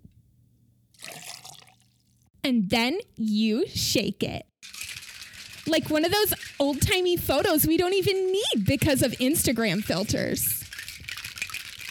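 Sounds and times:
liquid pouring into a shaker of ice: 1.0s - 2.1s, 4.6s - 6.7s
speech: 2.4s - 4.5s, 5.6s - 10.6s.

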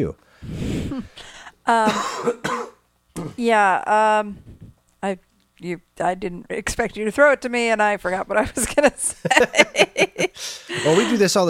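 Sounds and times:
speech: 0.0s - 11.4s
person clearing throat: 1.8s - 3.4s
person coughing: 1.8s - 3.4s
laughter: 8.5s - 11.3s.

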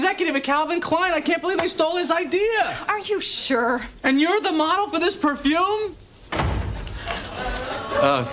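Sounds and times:
speech: 0.0s - 6.4s, 7.4s - 8.3s
room noise: 0.0s - 8.3s
door slamming shut: 6.3s - 7.3s
laughter: 6.9s - 8.3s.

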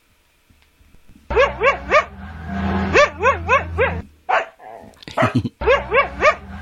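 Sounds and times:
dingo yelping: 1.3s - 2.1s, 2.9s - 6.4s.

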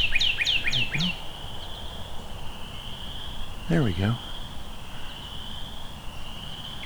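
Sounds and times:
Northern cardinal singing: 0.2s - 1.3s, 3.7s - 4.3s
speech: 3.7s - 4.3s.

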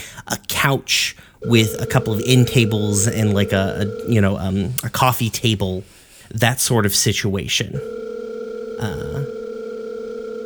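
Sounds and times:
speech: 0.2s - 8.1s, 8.8s - 9.2s
short warbling voice-like burst: 1.4s - 4.3s
cell phone ringing with a steady electronic tone: 1.4s - 4.5s, 7.8s - 10.4s.

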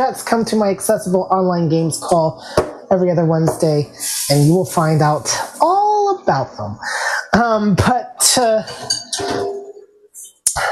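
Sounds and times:
speech: 0.0s - 9.6s
pot lid clattering and clinking: 8.8s - 9.8s.

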